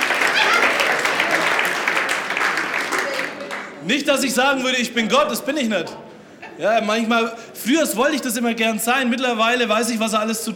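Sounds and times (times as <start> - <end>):
audience applause: 0.0 - 3.8
speech: 3.9 - 6.0, 6.6 - 10.5.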